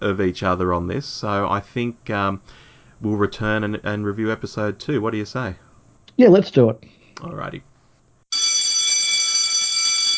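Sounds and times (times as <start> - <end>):
speech: 0.0 - 5.6, 6.2 - 7.7
electric bell ringing: 8.3 - 10.1.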